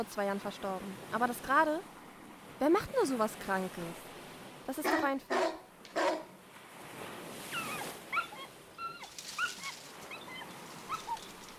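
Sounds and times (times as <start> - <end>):
speech: 0.0 - 2.0, 2.6 - 4.1, 4.7 - 5.5
dog whimpering: 7.6 - 11.2.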